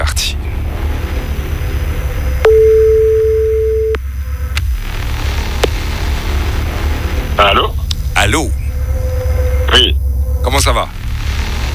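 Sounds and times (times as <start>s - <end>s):
low constant rumble: 0.0s - 11.7s
telephone ringing tone: 2.5s - 4.0s.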